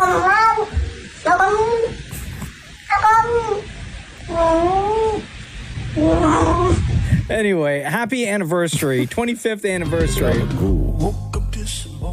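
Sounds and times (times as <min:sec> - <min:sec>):
cat meowing: 0:00.0 - 0:02.1, 0:02.8 - 0:05.4, 0:06.0 - 0:06.9
speech: 0:07.4 - 0:11.2.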